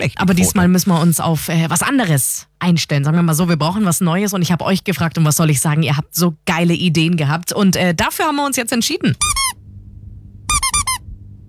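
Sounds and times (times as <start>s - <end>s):
speech: 0.0s - 9.6s
rubber duck toy squeaking: 9.1s - 9.6s, 10.5s - 11.0s.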